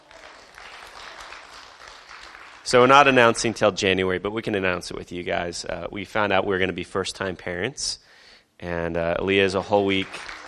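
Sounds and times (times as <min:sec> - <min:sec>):
audience applause for a guest: 0:00.0 - 0:03.4, 0:09.6 - 0:10.4
speech: 0:02.7 - 0:10.4.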